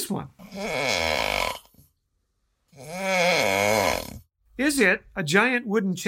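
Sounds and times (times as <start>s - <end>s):
speech: 0.1s - 1.6s, 4.6s - 6.0s
man snoring: 0.4s - 1.8s, 2.7s - 4.3s.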